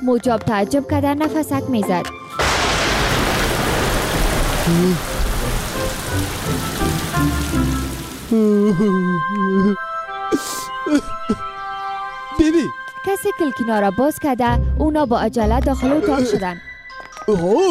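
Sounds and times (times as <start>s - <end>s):
speech: 0.0s - 2.2s, 4.7s - 5.1s, 8.3s - 11.5s, 12.4s - 16.7s, 17.3s - 17.6s
steady dense rain hissing: 2.4s - 8.8s.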